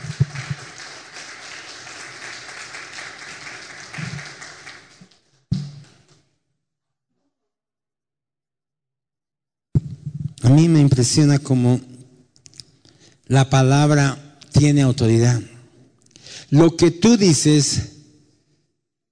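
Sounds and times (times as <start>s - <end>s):
crowd applauding loudly: 0.0s - 6.0s
speech: 10.5s - 11.9s, 13.3s - 15.5s, 16.5s - 17.9s.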